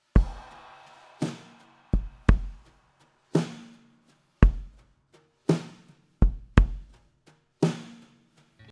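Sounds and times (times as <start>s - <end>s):
kick drum: 0.2s - 0.6s, 1.9s - 2.8s, 4.4s - 4.9s, 5.6s - 7.0s.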